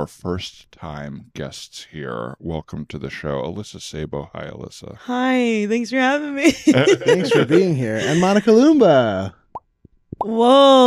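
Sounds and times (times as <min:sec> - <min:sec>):
speech: 0:00.0 - 0:09.4, 0:10.2 - 0:10.8
sustained voiced tone: 0:02.0 - 0:04.6, 0:06.8 - 0:08.5
laughter: 0:06.4 - 0:08.7
mouth imitating a bubble popping or water dripping off a house corner: 0:09.5 - 0:10.8.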